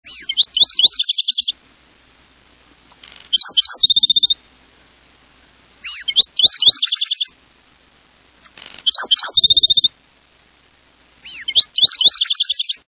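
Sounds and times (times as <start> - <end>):
Black-throated Sparrow: 0.1 - 1.6, 2.9 - 4.4, 5.8 - 7.4, 8.4 - 9.9, 11.2 - 12.8.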